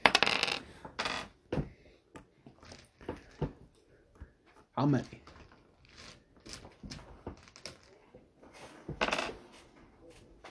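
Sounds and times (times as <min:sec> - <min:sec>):
dice clattering across a hard tabletop: 0:00.0 - 0:01.3, 0:02.2 - 0:03.5, 0:05.0 - 0:07.9, 0:09.0 - 0:09.4
speech: 0:04.8 - 0:05.3.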